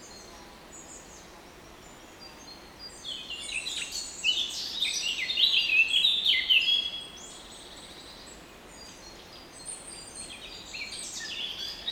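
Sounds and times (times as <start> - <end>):
Eurasian blackcap song: 0.0 - 11.9.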